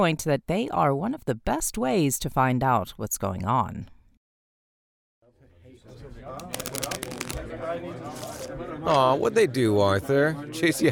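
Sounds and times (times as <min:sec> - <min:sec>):
speech: 0:00.0 - 0:04.0, 0:05.9 - 0:07.0, 0:07.6 - 0:10.9
playing cards shuffled and dealt at a men's poker game in a guards' barracks: 0:06.4 - 0:08.5.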